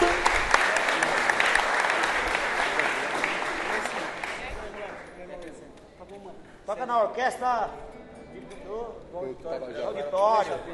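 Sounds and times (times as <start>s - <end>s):
audience applause: 0.0s - 5.0s
speech: 7.0s - 10.7s.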